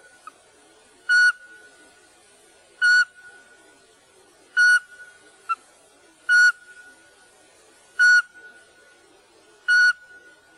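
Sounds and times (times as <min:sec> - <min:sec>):
faint continuous tone: 0:00.0 - 0:10.5
Eurasian pygmy owl giving whistled notes: 0:01.1 - 0:01.7, 0:02.8 - 0:03.4, 0:04.6 - 0:05.6, 0:06.3 - 0:06.8, 0:08.0 - 0:08.6, 0:09.7 - 0:10.2.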